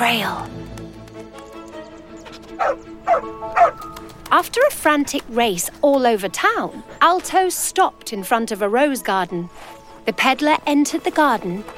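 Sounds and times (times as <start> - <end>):
speech: 0.0 - 0.6, 2.6 - 11.7
dog barking: 2.6 - 3.8.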